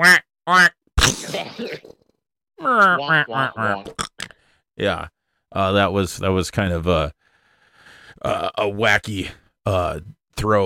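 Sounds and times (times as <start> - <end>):
person doing a loud nasal duck-quack imitation: 0.0 - 0.8, 2.6 - 4.3
speech: 0.0 - 1.8, 3.1 - 4.1, 4.8 - 7.2, 8.2 - 10.6.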